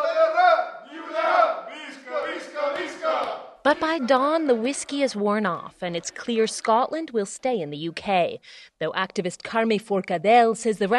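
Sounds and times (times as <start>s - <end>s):
crowd of people in a bar cheering and shouting: 0.0s - 5.0s
speech: 3.6s - 10.9s.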